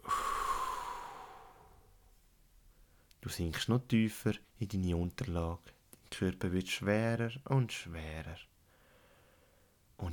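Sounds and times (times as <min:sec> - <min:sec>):
deep breath in and out during a guided relaxation exercise: 0:00.0 - 0:02.0, 0:08.7 - 0:09.8
speech: 0:03.2 - 0:08.5.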